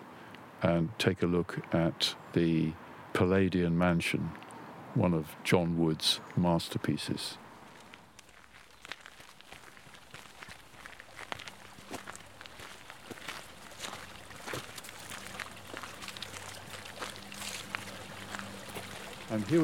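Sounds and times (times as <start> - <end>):
speech: 0.6 - 4.4, 5.0 - 7.4, 19.4 - 19.6
crunchy footstep-like clicks: 7.7 - 19.2
water flowing from an underground spring: 8.2 - 19.6.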